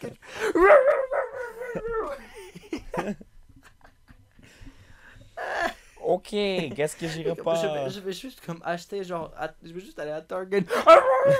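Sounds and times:
speech: 0.0s - 2.4s, 3.0s - 3.3s, 6.1s - 11.3s
dog howling: 0.6s - 2.2s, 10.8s - 11.3s
laughter: 1.6s - 4.2s.

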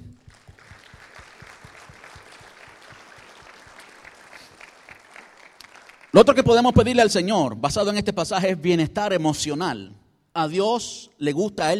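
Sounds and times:
regular low thumping beat: 0.0s - 3.8s
crowd applauding with many hands clapping: 0.0s - 6.6s
speech: 6.2s - 11.7s.

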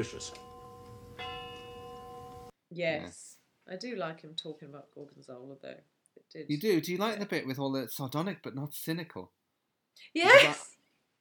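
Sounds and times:
speech: 0.0s - 0.5s, 2.7s - 9.4s, 10.0s - 11.2s
clock chiming: 0.0s - 2.5s.

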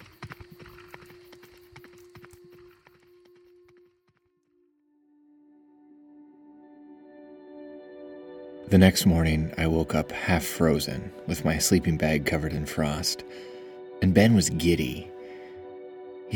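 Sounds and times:
rapid hoofbeats of galloping horses: 0.0s - 3.9s
speech: 8.7s - 15.1s.

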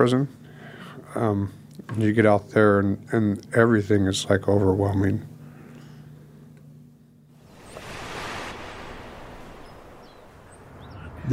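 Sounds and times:
speech: 0.0s - 0.4s, 1.2s - 5.3s
small wave breaking softly on the shore: 7.4s - 11.3s.

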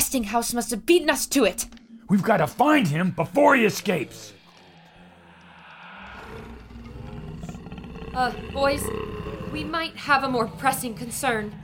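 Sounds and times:
speech: 0.1s - 4.4s, 8.2s - 11.6s
lion roaring with a deep rumbling growl: 3.9s - 11.6s.

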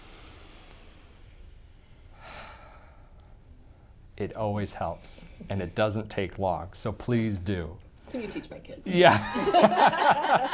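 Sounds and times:
deep breath: 0.0s - 4.1s, 4.7s - 5.9s
speech: 4.2s - 10.5s
laughter: 9.0s - 10.5s.

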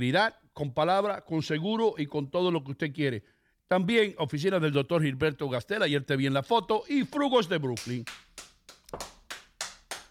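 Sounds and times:
speech: 0.0s - 9.1s
sparse claps from a small audience: 7.7s - 10.0s.

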